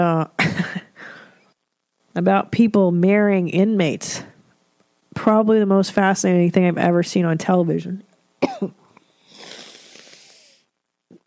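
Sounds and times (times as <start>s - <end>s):
speech: 2.2s - 4.3s, 5.2s - 8.8s
wet congested sniff through a stuffy nose: 9.2s - 10.7s.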